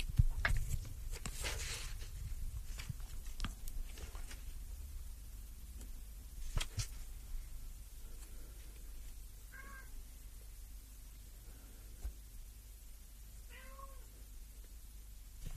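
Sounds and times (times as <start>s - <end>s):
quiet hissy background: 0.0s - 15.5s
cat meowing behind a closed bedroom door: 9.5s - 9.9s, 13.5s - 14.0s.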